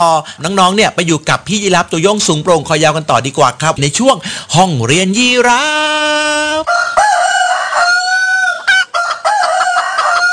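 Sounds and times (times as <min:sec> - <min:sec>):
speech: 0:00.0 - 0:06.8
chickens clucking: 0:06.6 - 0:10.3
rooster crowing in long drawn-out calls: 0:06.6 - 0:10.3.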